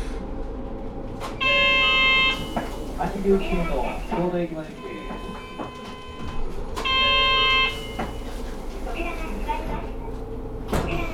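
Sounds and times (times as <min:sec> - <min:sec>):
city bus engine rumble pulling away from a stop: 0:00.0 - 0:11.1
speech: 0:03.0 - 0:04.9.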